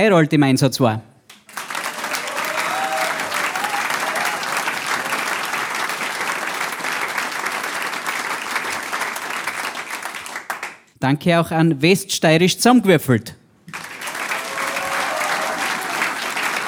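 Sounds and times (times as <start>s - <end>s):
speech: 0.0s - 1.1s, 11.0s - 13.4s
large audience applauding: 1.3s - 10.8s, 13.7s - 16.6s.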